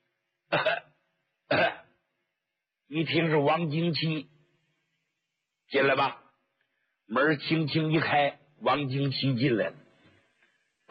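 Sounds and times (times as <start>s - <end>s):
person coughing outside: 0.5s - 0.9s, 1.5s - 1.9s
speech: 2.9s - 4.3s, 5.7s - 6.2s, 7.1s - 9.8s.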